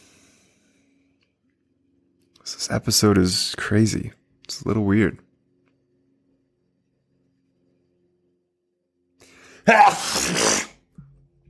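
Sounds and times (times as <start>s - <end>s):
speech: 2.5s - 5.3s
loud sneeze: 9.7s - 10.8s.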